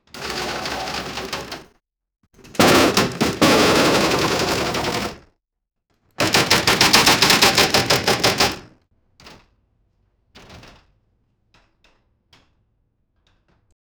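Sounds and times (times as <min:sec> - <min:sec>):
large machine piece falling in an accident: 0:02.5 - 0:05.2, 0:06.2 - 0:08.7.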